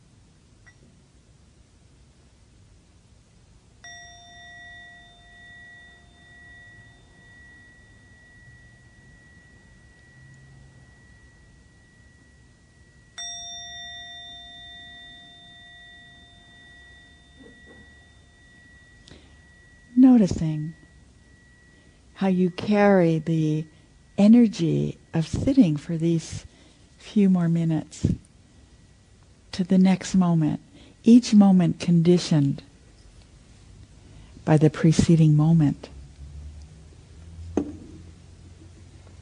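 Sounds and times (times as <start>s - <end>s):
soft hiss: 0.0s - 39.2s
meditation bell struck closing a sitting meditation: 3.8s - 33.0s
speech: 20.1s - 20.8s, 22.2s - 28.2s, 29.6s - 32.7s, 34.4s - 35.9s.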